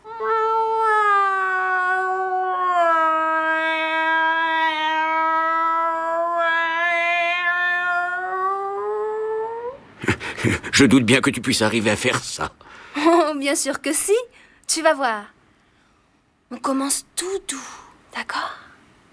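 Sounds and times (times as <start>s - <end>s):
cat yowling in a long song-like meow: 0.1s - 9.8s
speech: 10.4s - 12.6s, 13.4s - 15.4s, 16.7s - 17.8s.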